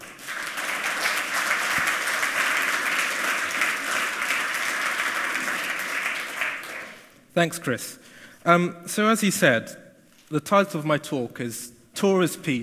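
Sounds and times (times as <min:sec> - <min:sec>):
audience applause: 0:00.0 - 0:07.1
speech: 0:07.4 - 0:12.6.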